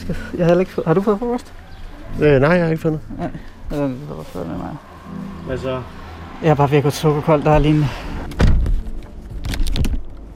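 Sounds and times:
speech: 0.1s - 8.4s
car door closing with a solid thud: 7.5s - 9.0s
rustling and thumps of people settling into a car: 8.3s - 10.1s.

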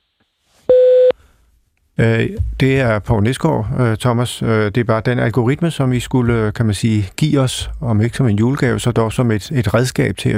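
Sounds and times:
single steady electronic answering machine beep: 0.7s - 1.1s
speech: 2.0s - 10.3s.

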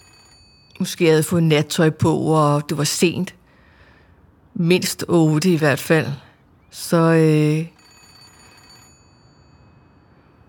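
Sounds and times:
telephone bell ringing: 0.0s - 0.8s, 7.5s - 10.4s
speech: 0.8s - 3.4s, 4.6s - 7.8s.

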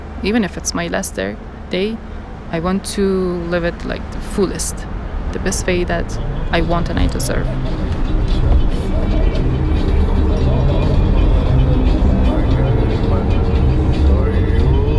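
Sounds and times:
car interior road and engine noise while driving in Kabul: 0.0s - 14.9s
speech: 0.2s - 8.6s
voices talking: 0.2s - 14.9s.

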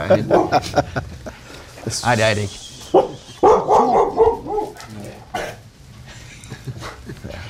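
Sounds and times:
laughter: 0.0s - 1.8s, 2.8s - 4.0s, 6.0s - 7.4s
speech: 0.1s - 1.1s, 1.8s - 2.6s
hunting dog barking excitedly: 0.3s - 0.6s, 2.9s - 4.9s.

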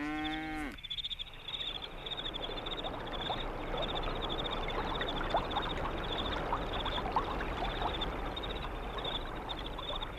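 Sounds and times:
cow mooing: 0.0s - 0.8s
crickets chirping: 0.0s - 10.1s
river flowing at night: 1.7s - 10.1s.

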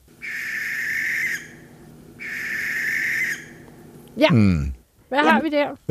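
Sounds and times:
water rail giving shrill squealing calls: 0.2s - 3.6s
speech: 4.2s - 5.8s.

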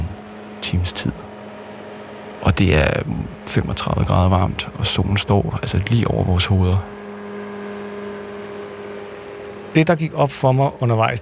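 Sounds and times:
motorboat engine droning on a run out to an island: 0.0s - 11.2s
speech: 0.7s - 1.3s, 2.6s - 6.9s, 9.8s - 11.2s.

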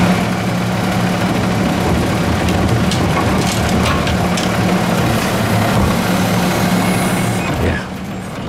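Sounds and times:
garbage truck engine idling: 0.0s - 8.4s
rubbish bins clanking and knocking as they are handled: 1.9s - 6.1s.

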